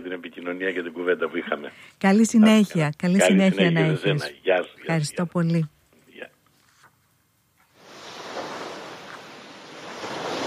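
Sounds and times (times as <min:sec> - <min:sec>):
speech: 0:00.2 - 0:05.8
sea waves breaking on a shore: 0:07.8 - 0:10.4.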